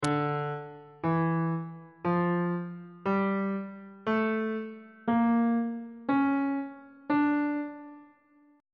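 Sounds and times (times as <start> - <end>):
C double sharp harmonic minor scale in bass clef: 0.0 - 8.6.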